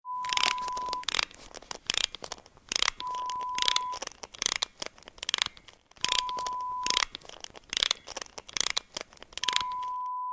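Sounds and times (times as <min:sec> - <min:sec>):
wind-up mechanism: 0:00.2 - 0:10.1.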